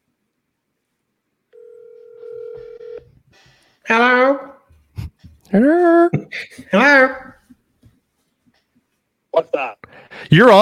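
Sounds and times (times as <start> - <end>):
telephone tone: 1.6 - 3.1
speech: 3.4 - 4.5, 5.5 - 7.3, 9.4 - 10.6.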